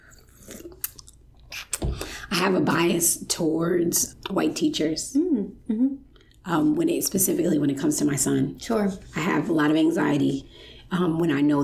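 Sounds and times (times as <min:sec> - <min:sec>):
person sipping a drink: 0:00.0 - 0:01.8
speech: 0:02.4 - 0:11.6.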